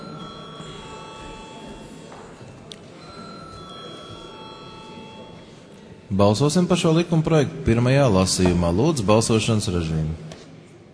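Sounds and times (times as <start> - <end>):
parliament electric call bell ringing: 0.0 - 2.0, 3.0 - 5.6
low murmur of a large room: 0.0 - 10.9
speech: 6.1 - 10.4.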